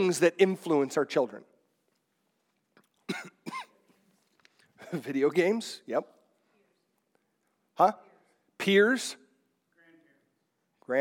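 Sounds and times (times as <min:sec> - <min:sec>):
speech: 0:00.0 - 0:01.5, 0:03.1 - 0:03.7, 0:04.9 - 0:06.2, 0:07.8 - 0:09.2
person having a coughing fit: 0:03.0 - 0:04.0.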